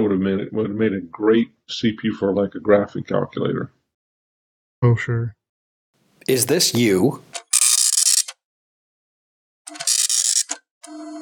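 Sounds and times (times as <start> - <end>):
speech: 0.0 - 3.8, 4.8 - 5.4, 6.3 - 7.4
slow serial printer printing: 9.7 - 11.2.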